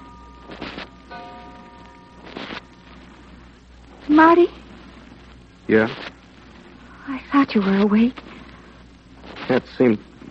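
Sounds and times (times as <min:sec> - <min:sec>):
clock striking at night: 0:00.0 - 0:03.0
speech: 0:04.1 - 0:04.6, 0:05.7 - 0:06.1, 0:07.1 - 0:08.3, 0:09.5 - 0:10.1.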